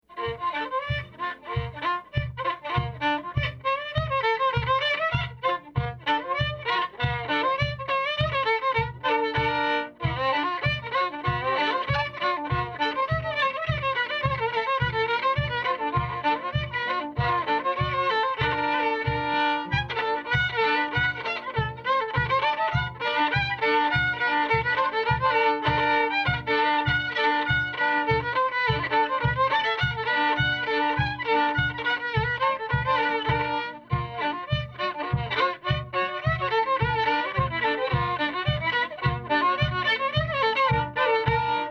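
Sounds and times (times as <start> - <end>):
reel tune in B flat: 0.1 - 41.7.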